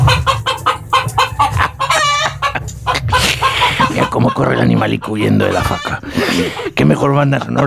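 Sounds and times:
rooster clucking in agitated bursts: 0:00.0 - 0:07.0
rooster crowing: 0:01.3 - 0:02.4, 0:04.6 - 0:06.0
laughter: 0:01.4 - 0:07.6
speech: 0:04.4 - 0:07.6.

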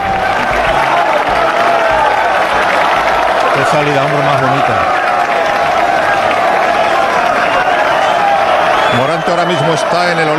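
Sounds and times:
crowd applauding at the bullring in Seville: 0:00.0 - 0:10.3
crowd of thousands cheering at the Puerta del Príncipe gate of the bullring in Seville: 0:00.0 - 0:10.3
crowd shouts at the bullring in Seville: 0:00.0 - 0:10.3
speech: 0:03.7 - 0:05.0, 0:09.0 - 0:10.3.

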